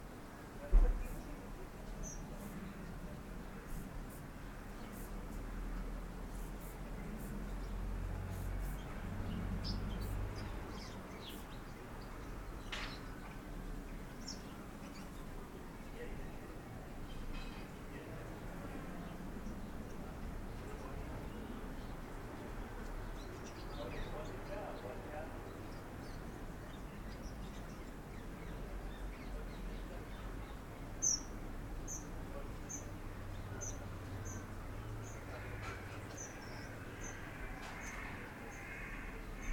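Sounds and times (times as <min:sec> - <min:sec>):
garden ambience on a Sunday late morning in July during lockdown: 0:00.0 - 0:39.5.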